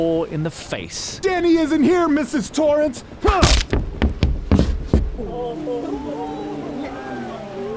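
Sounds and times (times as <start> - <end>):
speech: 0.0 - 3.8, 5.2 - 6.3
makeshift weapon striking a large man's face: 3.2 - 3.8.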